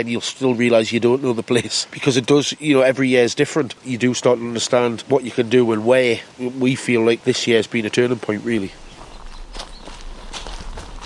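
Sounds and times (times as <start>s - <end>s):
speech: 0.0s - 8.8s
footsteps walking outdoors on a farm beside a hay meadow: 8.6s - 11.0s.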